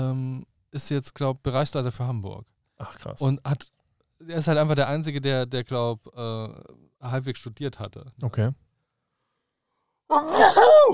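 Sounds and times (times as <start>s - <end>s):
speech: 0.7s - 8.6s, 10.1s - 10.9s
person sneezing: 10.1s - 10.9s.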